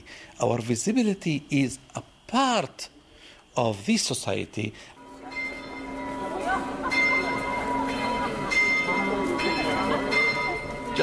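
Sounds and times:
speech: 0.4s - 3.0s, 3.6s - 5.0s
church bells pealing from a belfry at midday: 5.0s - 11.0s.

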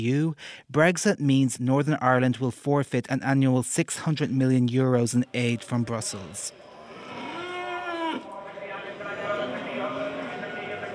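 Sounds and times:
speech: 0.0s - 6.7s
people talking indistinctly: 3.2s - 6.7s, 8.2s - 10.9s
steady crowd murmur at a livestock market: 6.5s - 10.9s
cattle lowing in long drawn-out moos at a livestock market: 6.6s - 8.3s.

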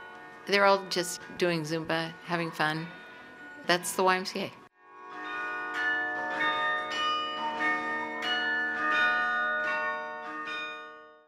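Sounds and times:
carillon bells ringing: 0.0s - 11.2s
speech: 0.5s - 3.0s, 3.7s - 4.6s.

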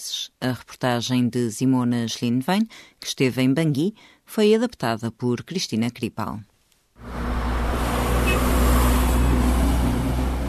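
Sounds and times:
speech: 0.0s - 7.1s
convoy of transport truck engines rumbling: 7.0s - 10.4s.

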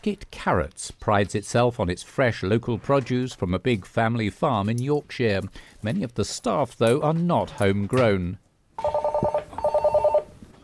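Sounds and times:
speech: 0.0s - 9.0s
telephone ringing at a farm business reception: 8.8s - 10.6s.

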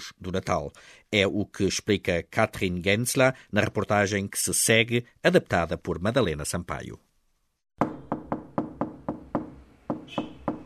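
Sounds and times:
speech: 0.1s - 7.1s
knocking on a door: 7.8s - 10.6s.

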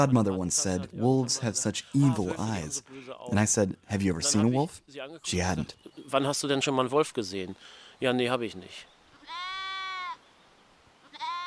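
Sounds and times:
speech: 0.0s - 8.9s
sheep from a flock bleating: 9.2s - 10.2s, 11.0s - 11.4s.

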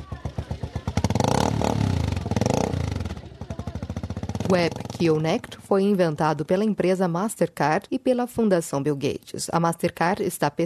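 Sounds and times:
motorcycle engine idling and revving: 0.0s - 7.8s
speech: 4.5s - 10.6s.

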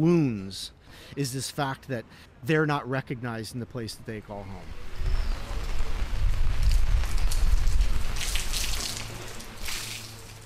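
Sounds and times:
speech: 0.0s - 5.2s
rain starting to fall outside a cafe: 4.8s - 10.4s.

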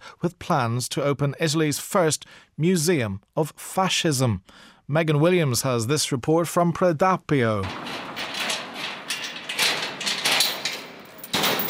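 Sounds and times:
speech: 0.2s - 8.0s
lock of a door being unlocked, clacking and rattling: 7.6s - 11.6s
heavy grand entrance door scraping open: 7.7s - 11.6s.

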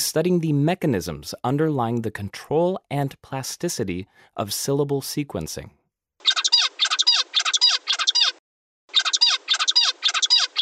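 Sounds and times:
speech: 0.1s - 5.8s
songbird singing fast repeated four-syllable song: 6.2s - 10.5s.

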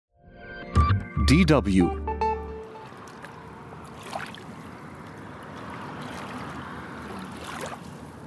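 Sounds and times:
speech: 1.3s - 2.1s
river water lapping the shoreline: 2.6s - 8.2s
splashy swishes of river water: 2.8s - 8.2s.

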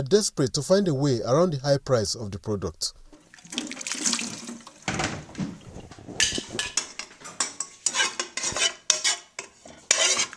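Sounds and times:
speech: 0.0s - 3.0s
water splashing in a home kitchen in Abuja: 3.1s - 6.0s
stirring while cooking in a home kitchen in Abuja: 3.1s - 10.3s
running water from a tap in a home kitchen in Abuja: 3.2s - 5.2s
clinking cutlery and dishes in a home kitchen in Abuja: 6.2s - 10.3s.

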